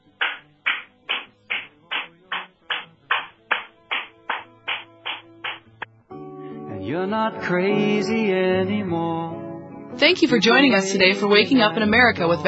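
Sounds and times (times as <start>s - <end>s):
sharp rhythmic hand claps: 0.0s - 5.9s
speech: 6.9s - 9.4s, 10.0s - 12.4s.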